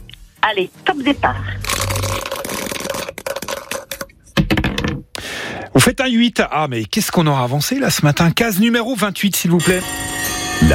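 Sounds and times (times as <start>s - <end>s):
speech: 0.4s - 1.9s, 5.8s - 10.7s
pair of dice clattering across a hard surface: 1.6s - 4.9s.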